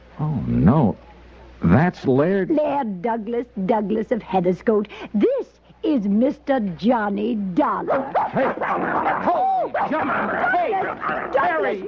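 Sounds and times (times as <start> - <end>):
speech: 0.2 - 11.8
dog growling and yipping while holding a man's leg: 7.9 - 11.8.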